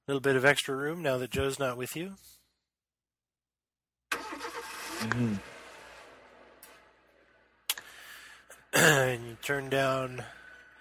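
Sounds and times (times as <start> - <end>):
speech: 0.1 - 2.4, 5.0 - 5.5, 8.8 - 10.4
car engine starting: 4.1 - 10.7.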